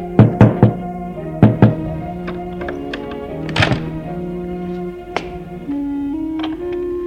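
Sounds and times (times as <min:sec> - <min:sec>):
knocking on an apartment door: 0:00.2 - 0:02.8
soft thuds: 0:00.2 - 0:06.9.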